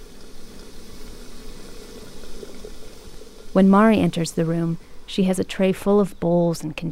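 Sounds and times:
faint bubbling and soft gurgles of kettle water: 0:00.0 - 0:05.0
water simmering in a kettle on a sunken hearth in a tea room: 0:00.0 - 0:06.2
speech: 0:03.6 - 0:06.8.

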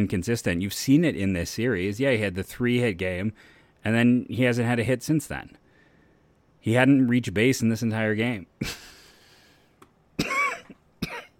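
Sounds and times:
speech: 0:00.0 - 0:05.6, 0:06.6 - 0:08.9
person coughing with a sharp harsh cough: 0:10.2 - 0:11.3.

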